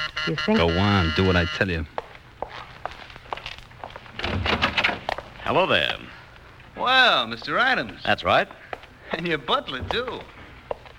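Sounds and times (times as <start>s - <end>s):
speech: 0.2s - 2.0s, 5.5s - 6.2s, 6.8s - 10.4s
footsteps at a walking pace: 1.9s - 6.7s, 7.3s - 10.9s
door thrown open: 4.2s - 5.1s.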